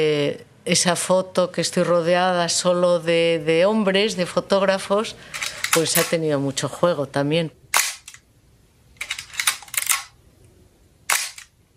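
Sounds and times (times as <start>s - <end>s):
speech: 0.0s - 7.6s
old Nikon F2 film camera shutter clicking: 5.4s - 6.2s, 7.8s - 8.2s, 9.0s - 10.1s, 11.1s - 11.6s.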